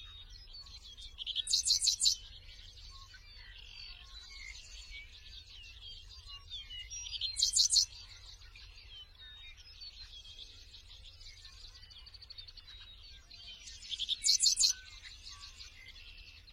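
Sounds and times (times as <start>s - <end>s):
seedeater singing warbled twitters: 0.0s - 16.5s.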